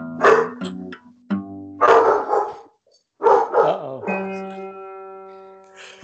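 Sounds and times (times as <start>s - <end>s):
drawn-out whining dog yelp: 0.2s - 0.6s
dogs barking in sharp overlapping yips and woofs: 0.2s - 0.7s, 1.8s - 4.2s.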